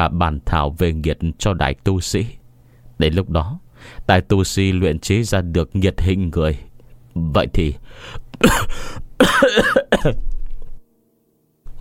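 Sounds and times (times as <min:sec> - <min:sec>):
speech: 0:00.0 - 0:02.4, 0:03.0 - 0:10.4
man coughing in a harsh fit: 0:08.4 - 0:10.2.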